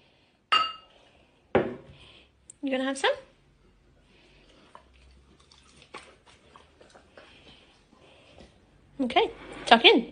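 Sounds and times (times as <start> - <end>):
glasses clinking in a toast: 0.5 - 0.9
speech: 2.6 - 3.3, 9.0 - 10.1.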